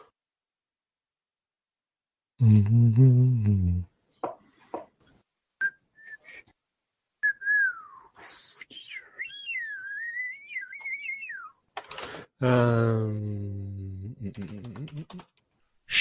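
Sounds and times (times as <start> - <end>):
speech: 2.4 - 3.9, 12.4 - 13.6, 14.2 - 15.3
person whistling a wandering pitch-bending tune: 5.6 - 6.4, 7.2 - 9.3.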